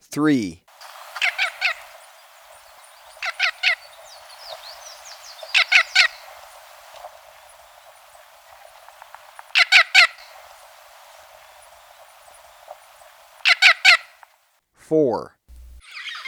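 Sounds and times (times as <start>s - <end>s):
speech: 0.2s - 0.6s, 14.9s - 15.4s
scaly-naped amazon squawking in Ecuador: 1.1s - 6.1s, 9.4s - 10.2s, 13.4s - 14.0s.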